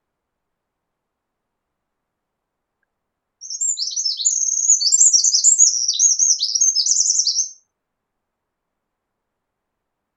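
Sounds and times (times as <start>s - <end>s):
Eurasian wren Troglodytes troglodytes singing: 3.4s - 7.6s.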